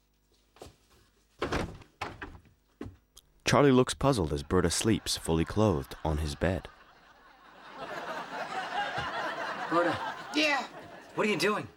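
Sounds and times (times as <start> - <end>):
bedroom door thumping as it swings and bumps: 1.4 - 3.0
speech: 3.5 - 6.7, 11.2 - 11.7
laughter: 4.3 - 11.7.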